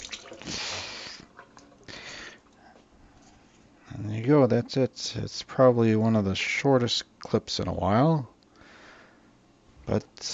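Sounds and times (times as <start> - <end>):
small wet handling noises: 0.0 - 2.6
water running over an egg shell as it is washed: 0.0 - 2.6
speech: 4.3 - 8.3, 9.9 - 10.3.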